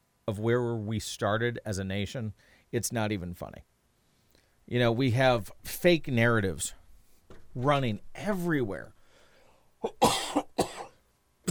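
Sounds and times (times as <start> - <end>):
speech: 0.3 - 3.7, 4.7 - 6.8, 7.6 - 9.0, 9.8 - 10.4
person coughing: 9.8 - 11.4.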